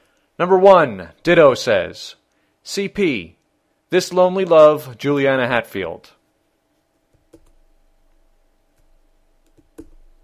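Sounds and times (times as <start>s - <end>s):
quiet steady hum: 0.0s - 10.2s
speech: 0.4s - 6.2s
sharp computer keyboard clicks: 7.2s - 7.6s, 8.8s - 10.0s.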